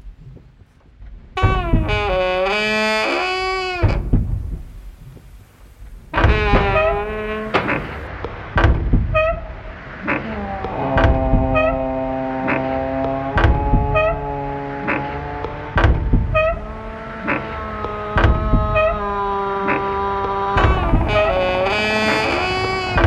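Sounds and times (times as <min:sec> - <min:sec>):
old studio door creaking and groaning: 0:01.4 - 0:14.6, 0:15.8 - 0:23.0
sharp clicks and knocks: 0:03.8 - 0:09.5, 0:10.9 - 0:11.8, 0:12.5 - 0:16.7, 0:17.3 - 0:19.1, 0:19.7 - 0:23.0.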